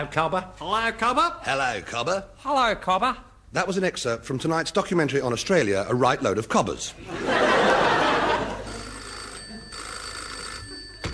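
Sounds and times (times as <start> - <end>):
speech: 0.0 - 7.6
laughter: 7.0 - 9.9
old-style telephone bell ringing: 8.6 - 11.1.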